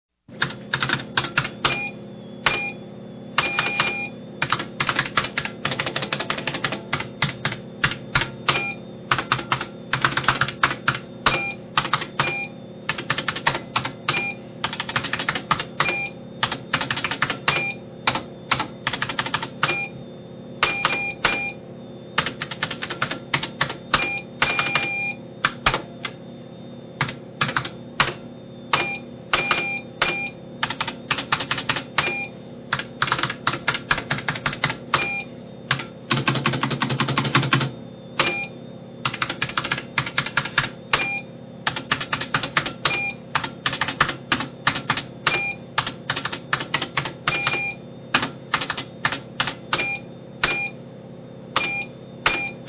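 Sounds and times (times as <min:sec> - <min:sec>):
typing on computers: 0:00.3 - 0:01.8, 0:03.4 - 0:19.8, 0:22.2 - 0:26.2, 0:27.0 - 0:38.3, 0:39.0 - 0:41.0, 0:41.6 - 0:49.9, 0:51.6 - 0:52.6
computer beeps: 0:00.5 - 0:20.0, 0:20.6 - 0:21.6, 0:22.2 - 0:26.2, 0:27.0 - 0:41.3, 0:41.9 - 0:44.1, 0:44.7 - 0:47.8, 0:49.7 - 0:50.8, 0:51.6 - 0:52.6.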